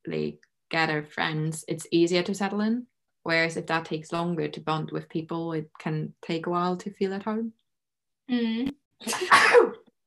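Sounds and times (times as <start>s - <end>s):
speech: 0.1s - 7.6s, 8.3s - 9.8s
person sneezing: 9.0s - 9.9s.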